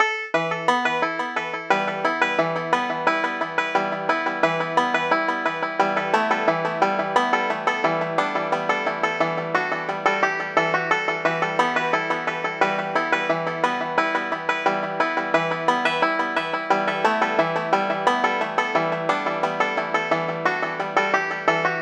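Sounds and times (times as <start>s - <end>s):
banjo: 0.0s - 21.8s.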